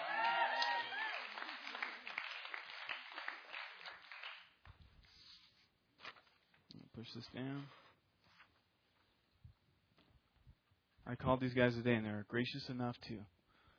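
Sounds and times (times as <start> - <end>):
audience clapping: 0.0 - 4.7
speech: 7.0 - 7.8, 11.1 - 13.4.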